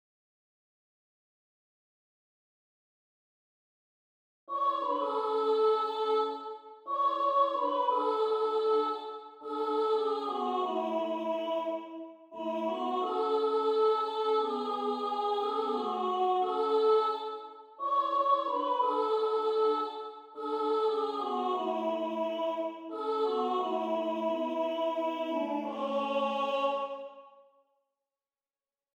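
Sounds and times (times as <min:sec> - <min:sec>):
treble soprano singing in an audition: 0:04.5 - 0:27.3.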